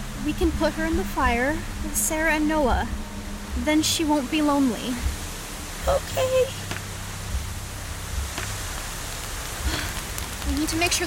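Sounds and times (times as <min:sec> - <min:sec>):
light rain falling outdoors: 0:00.0 - 0:11.0
low rumble: 0:00.0 - 0:11.0
speech: 0:00.2 - 0:03.0, 0:03.6 - 0:05.1, 0:05.8 - 0:06.6, 0:10.5 - 0:11.0.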